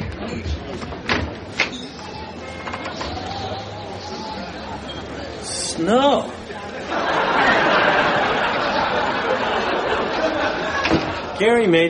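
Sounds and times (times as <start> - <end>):
sharp knocks and clunks: 0.0 - 3.2
door opening: 0.0 - 3.5, 10.7 - 11.3
faint murmuring voices: 0.0 - 11.4
speech: 5.8 - 6.4, 11.4 - 11.8
laughter: 6.4 - 11.7.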